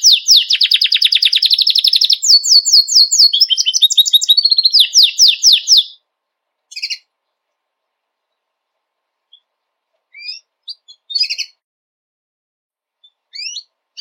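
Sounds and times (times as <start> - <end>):
white Belgian canary singing buzzy trills and whistled sweeps: 0.0 - 6.0, 6.7 - 7.1, 9.3 - 11.6, 13.0 - 13.9.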